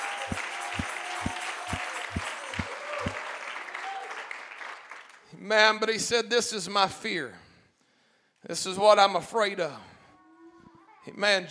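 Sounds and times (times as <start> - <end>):
dense wash of crowd noise: 0.0 - 3.2
audience clapping hands in a steady rhythm: 0.0 - 5.3
scattered applause: 0.0 - 5.3
speech: 5.5 - 7.4, 8.5 - 9.9, 11.1 - 11.4.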